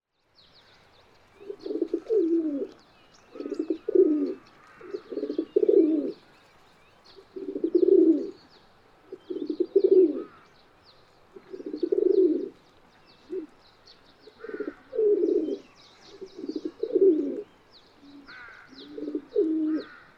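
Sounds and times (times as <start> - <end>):
Columbidae pigeons cooing: 1.4 - 6.4, 7.1 - 8.4, 9.1 - 10.5, 11.3 - 12.6, 13.2 - 13.6, 14.2 - 20.1.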